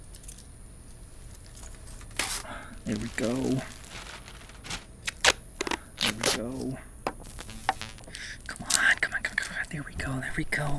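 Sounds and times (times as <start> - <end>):
keys jangling: 0.0 - 0.5, 1.2 - 2.4, 8.1 - 9.9
low hum: 0.0 - 10.7
speech: 2.9 - 3.8, 6.4 - 6.9, 9.8 - 10.7.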